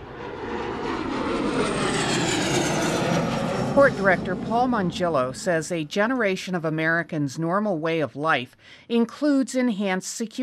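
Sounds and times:
aircraft engine roaring overhead over an assembly: 0.0 - 6.8
speech: 3.8 - 10.4.

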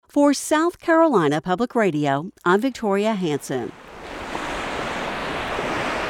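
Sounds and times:
speech: 0.1 - 3.9
Atlantic Ocean waves washing on the South Carolina coast: 3.2 - 6.0
wind noise: 3.8 - 6.0.

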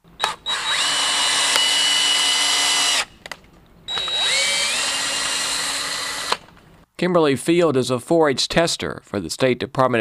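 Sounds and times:
power drill boring core samples from hay bales: 0.2 - 3.1, 3.9 - 6.6
speech: 7.0 - 10.0.

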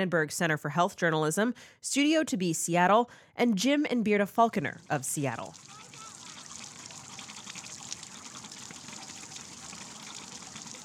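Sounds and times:
speech: 0.0 - 5.8
water gushing from a metal artesian well spigot: 4.6 - 10.8.

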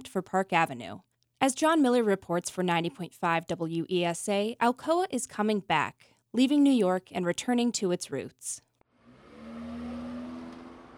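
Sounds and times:
speech: 0.1 - 8.7
cars and vans driving along a bustling city street: 8.9 - 10.9.

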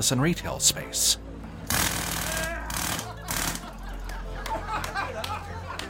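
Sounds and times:
speech: 0.0 - 1.3
jackhammer breaking ground: 1.7 - 3.7
crowd murmuring and chuckling: 2.4 - 5.8.

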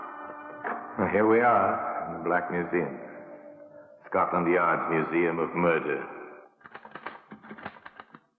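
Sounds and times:
speech: 1.2 - 3.1, 4.1 - 6.2
typewriter keys clattering while writing a letter: 6.6 - 8.2.

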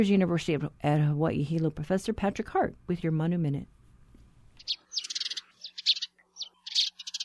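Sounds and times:
speech: 0.0 - 3.8, 4.6 - 5.1
house sparrow chirping: 4.6 - 7.2.

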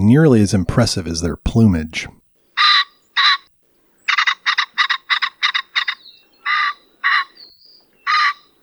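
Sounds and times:
speech: 0.1 - 2.2
common pheasant giving two-note cock-er calls: 2.4 - 8.6.

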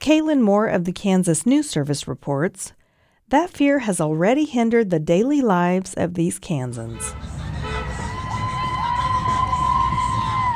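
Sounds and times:
speech: 0.0 - 7.3
large outdoor crowd cheering and shouting at a rally: 7.4 - 10.5
higher whoops and yells from rally crowd: 7.8 - 10.5.

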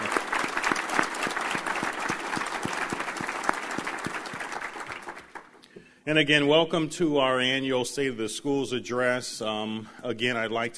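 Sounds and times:
room full of people applauding: 0.0 - 5.6
speech: 6.1 - 10.7.

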